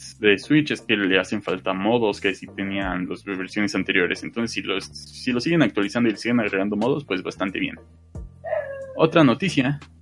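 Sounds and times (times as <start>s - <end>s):
speech: 0.2s - 8.3s, 9.0s - 10.0s
dog yelping: 8.5s - 9.0s.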